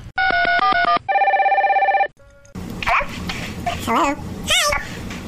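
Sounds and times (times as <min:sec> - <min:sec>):
electronic phone tones on an outgoing call: 0:00.2 - 0:02.5
speech: 0:03.9 - 0:04.7.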